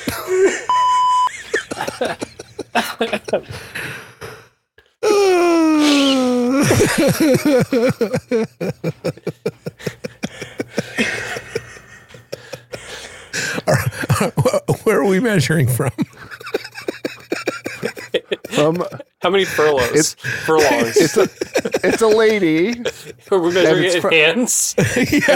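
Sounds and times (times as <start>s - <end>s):
short steady electronic censor bleep: 0.7s - 1.3s
laughter: 1.3s - 3.8s, 6.0s - 25.3s
speech: 3.0s - 3.8s, 7.0s - 9.2s, 15.2s - 16.0s, 18.6s - 25.3s
long groaning sighing vocal sound: 5.0s - 6.6s.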